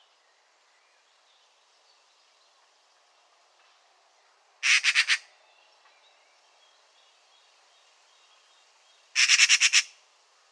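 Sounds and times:
Eurasian magpie chattering with coarse rasping notes: 9.2 - 9.9.

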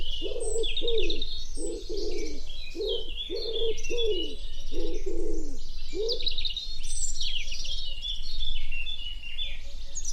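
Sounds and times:
common wood pigeon cooing: 0.0 - 6.2
songbird twittering: 0.0 - 10.1.

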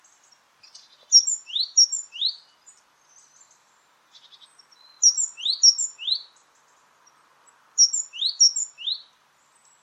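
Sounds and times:
great tit calling in thin high paired notes: 0.6 - 2.4, 4.2 - 6.2, 7.8 - 9.0.

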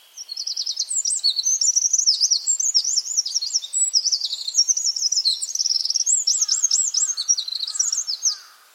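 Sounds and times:
bird song of very high sharply modulated twittering notes: 0.2 - 8.5.

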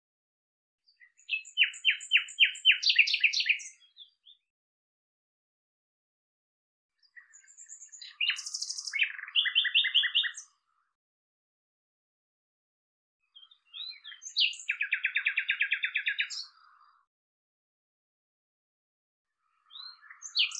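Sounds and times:
Common nightingale song with chirps and rattling series: 1.0 - 4.4, 7.1 - 10.4, 13.4 - 16.8.

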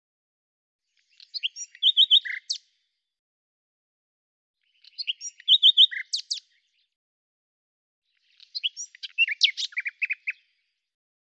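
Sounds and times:
common nightingale singing: 0.9 - 2.8, 4.6 - 7.0, 8.1 - 10.8.

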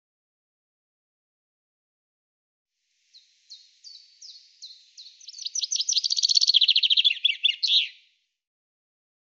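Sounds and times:
common chaffinch song: 2.9 - 8.2.

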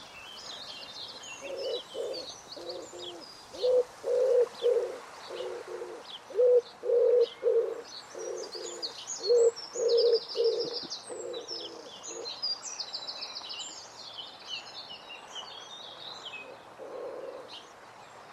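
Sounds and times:
other birds giving thin high chirps and twitters: 0.0 - 13.9
bird giving low hollow cooing notes: 1.4 - 12.3, 16.5 - 17.6.

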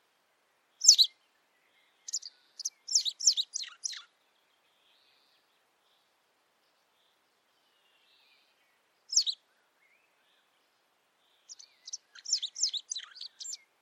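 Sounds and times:
high sharp bird chirps dropping in pitch: 0.8 - 1.1, 2.1 - 4.1, 11.5 - 13.6.

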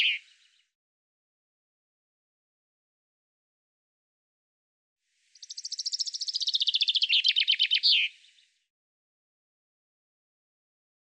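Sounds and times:
common chaffinch song with descending trill: 0.0 - 0.6, 5.2 - 8.7.

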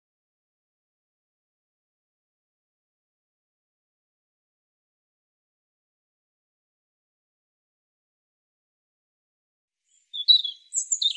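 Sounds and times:
European robin singing: 9.9 - 11.1.

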